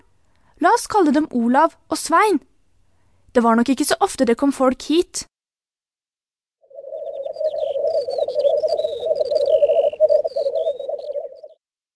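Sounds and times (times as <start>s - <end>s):
speech: 0.6s - 2.5s, 3.4s - 5.3s
dense steady croaking chorus: 6.7s - 11.6s
thin high bird whistles and chirps: 6.8s - 11.6s.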